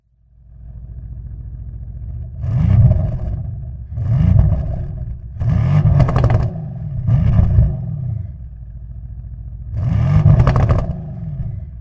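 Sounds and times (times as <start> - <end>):
ultra performance hybrid car engine: 0.4 - 11.8.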